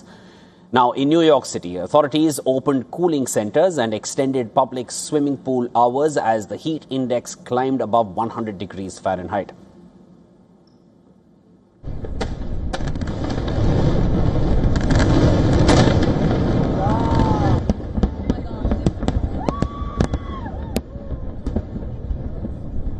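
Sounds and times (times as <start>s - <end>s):
speech: 0.7s - 9.7s
fireworks crackling and popping during US Independence Day celebrations: 11.8s - 22.9s
whistling rockets rising: 12.0s - 22.9s.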